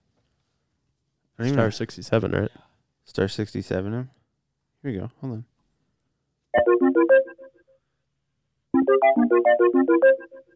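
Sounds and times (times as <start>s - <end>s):
speech: 1.4s - 4.2s, 4.8s - 5.5s, 6.9s - 7.4s, 8.8s - 10.5s
Snapchat outgoing call ringing tone chimes: 6.6s - 7.6s, 8.8s - 10.5s.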